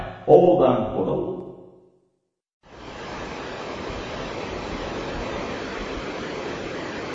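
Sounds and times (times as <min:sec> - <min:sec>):
speech: 0:00.3 - 0:01.4
ocean waves on a sandy beach at Shonan Japan: 0:02.7 - 0:07.1.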